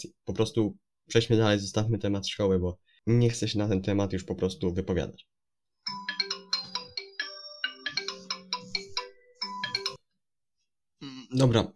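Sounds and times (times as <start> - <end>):
speech: 0.0 - 5.4, 11.3 - 11.7
melodic phone ringtone: 5.8 - 10.0.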